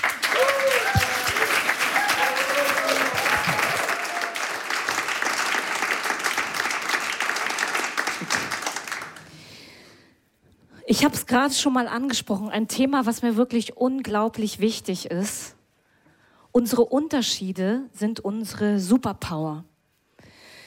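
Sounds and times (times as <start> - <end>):
studio audience whooping and cheering: 0.0 - 5.0
studio audience applause: 0.0 - 9.4
speech: 10.9 - 15.6, 16.6 - 19.7.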